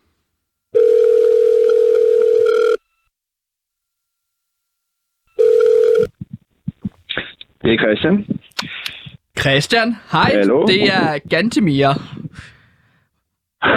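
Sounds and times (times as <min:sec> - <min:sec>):
telephone dial tone while placing a call: 0:00.7 - 0:03.1, 0:05.3 - 0:06.1
speech: 0:07.6 - 0:08.4, 0:09.4 - 0:12.5.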